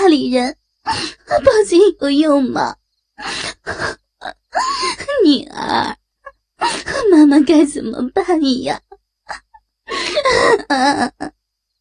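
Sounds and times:
speech: 0.1s - 6.0s, 6.6s - 11.4s
woman sobbing and wailing: 3.2s - 5.2s, 6.2s - 7.2s, 9.2s - 11.4s.

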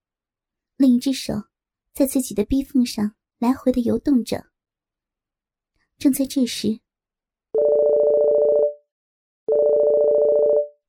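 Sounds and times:
speech: 0.8s - 4.5s, 6.0s - 6.8s
mobile phone ringing: 7.6s - 8.8s, 9.5s - 10.8s.

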